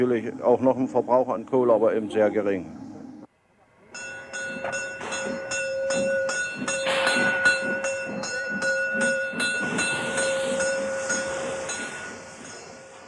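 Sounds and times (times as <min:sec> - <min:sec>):
speech: 0:00.0 - 0:02.8
bell ringing: 0:03.9 - 0:13.0
small narrow-gauge train cars rattling over the rails: 0:04.0 - 0:13.0.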